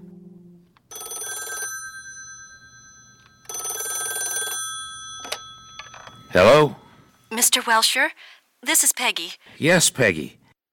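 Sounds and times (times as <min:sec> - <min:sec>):
old-fashioned telephone bell ringing in rattling bursts: 0:00.9 - 0:07.3
speech: 0:06.3 - 0:10.4.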